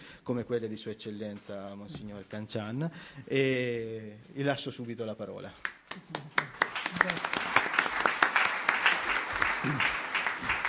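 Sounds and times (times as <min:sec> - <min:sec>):
speech: 0:00.2 - 0:07.4
audience applause: 0:05.9 - 0:10.6.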